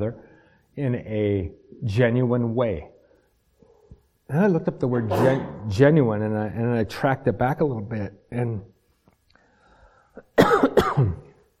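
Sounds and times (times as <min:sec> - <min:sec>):
speech: 0:00.0 - 0:02.9, 0:04.3 - 0:08.7
person coughing: 0:05.0 - 0:05.7, 0:10.4 - 0:11.3.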